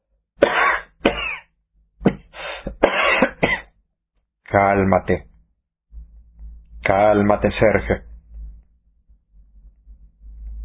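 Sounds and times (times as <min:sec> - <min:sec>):
harsh coughing fit: 0:00.4 - 0:03.8
speech: 0:04.5 - 0:05.3, 0:06.9 - 0:08.1.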